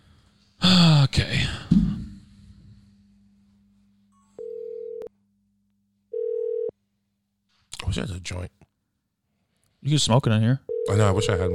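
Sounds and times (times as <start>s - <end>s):
low hum: 0.0s - 11.5s
thump: 1.7s - 2.2s
phone ringback tone through the speaker of a phone: 4.4s - 5.1s, 6.1s - 6.7s, 10.7s - 11.5s
speech: 8.0s - 8.6s, 9.8s - 11.5s.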